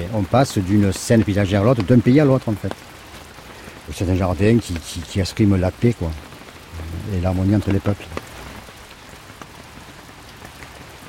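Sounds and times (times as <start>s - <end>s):
steady rain falling in a Japanese garden: 0.0s - 11.0s
speech: 0.1s - 3.0s, 3.9s - 6.3s, 6.9s - 8.2s.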